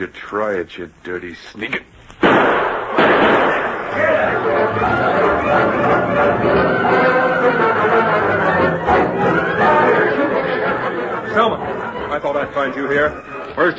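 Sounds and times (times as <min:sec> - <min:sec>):
speech: 0:00.0 - 0:07.6, 0:12.2 - 0:13.7
gunshots in a radio drama shootout: 0:02.2 - 0:04.3
overlapping voices in a loud commotion: 0:03.0 - 0:13.7.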